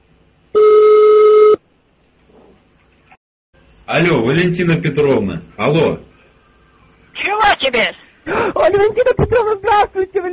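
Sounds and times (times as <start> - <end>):
telephone tone of a call being placed to the police: 0.5 - 1.6
speech: 3.9 - 6.1, 7.6 - 10.3.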